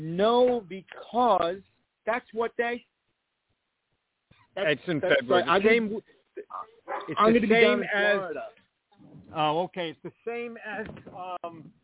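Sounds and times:
speech: 0.0 - 2.9, 4.6 - 8.6, 9.3 - 11.8
dog barking indoors in a house: 6.5 - 7.2.

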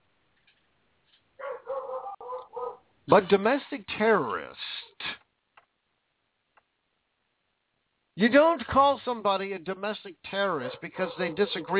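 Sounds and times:
dog barking in a drawn-out tonal way: 1.4 - 2.8, 10.6 - 11.7
speech: 3.1 - 4.6, 8.2 - 11.7.

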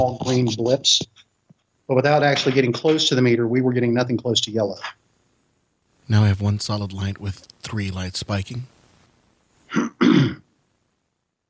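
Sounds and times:
speech: 0.0 - 1.2, 1.9 - 5.0, 6.1 - 8.8, 9.7 - 10.4
person clearing throat: 9.7 - 10.4.

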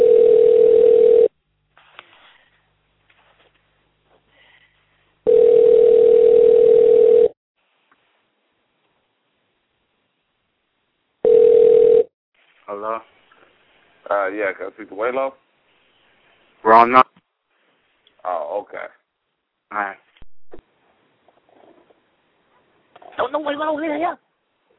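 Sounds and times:
telephone line tone while placing a call: 0.0 - 1.3, 5.3 - 7.3, 11.2 - 12.1
speech: 14.3 - 15.5, 16.6 - 17.2, 18.2 - 19.0, 19.7 - 20.6, 23.2 - 24.2.

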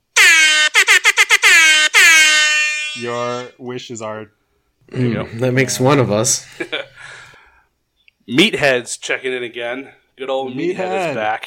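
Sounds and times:
reggae air horn sound effect blasts: 0.1 - 3.5
speech: 3.0 - 7.2, 8.3 - 11.4.

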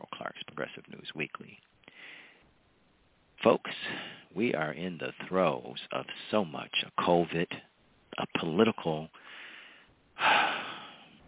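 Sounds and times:
speech: 0.3 - 2.2, 3.4 - 9.4
sharp breath intake: 1.9 - 2.5, 9.2 - 11.2.

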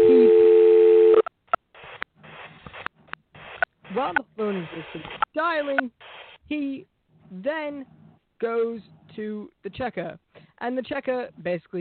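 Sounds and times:
telephone tone as a phone is dialed: 0.0 - 1.3
speech: 4.0 - 11.7.

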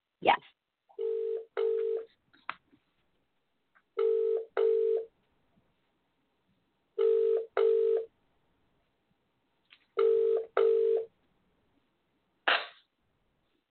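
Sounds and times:
messaging app call ringing tone beeps: 1.0 - 2.1, 4.0 - 5.1, 7.0 - 8.1, 10.0 - 11.1.

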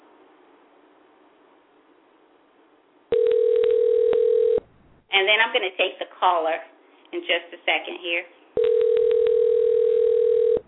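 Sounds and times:
telephone dial tone while redialing to reconnect a dropped caller: 3.1 - 4.6, 8.6 - 10.6
speech: 5.3 - 8.8.

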